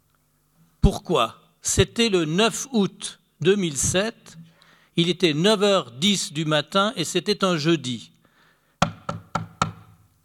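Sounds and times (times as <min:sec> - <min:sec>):
speech: 0:00.8 - 0:08.1
firm knocking on a door: 0:08.8 - 0:10.0.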